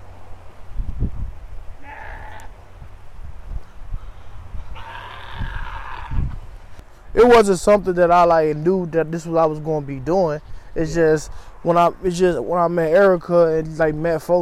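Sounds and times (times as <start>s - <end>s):
low rumble of wind outdoors: 0.0s - 13.0s
goats bleating: 1.8s - 2.5s, 4.7s - 6.4s
speech: 7.2s - 14.3s.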